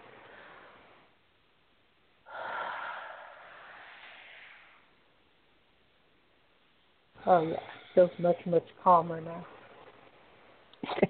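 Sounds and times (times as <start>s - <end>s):
deep breath drawn slowly: 0.1s - 1.1s, 2.2s - 5.0s
speech: 7.2s - 9.5s.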